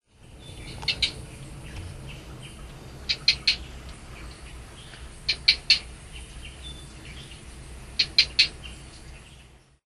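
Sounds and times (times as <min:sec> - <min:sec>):
Gephyromantis webbi frog calling: 0:00.7 - 0:07.2, 0:07.9 - 0:08.8.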